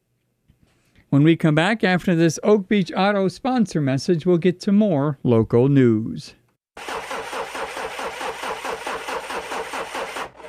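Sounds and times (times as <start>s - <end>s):
speech: 1.1s - 6.9s
car engine cranking but failing to start: 6.8s - 10.4s.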